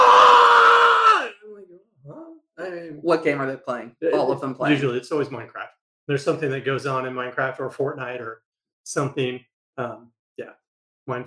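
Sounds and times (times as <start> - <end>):
voice imitating the loud sustained scream of a gaming YouTuber: 0.0 - 1.4
speech: 3.0 - 11.2.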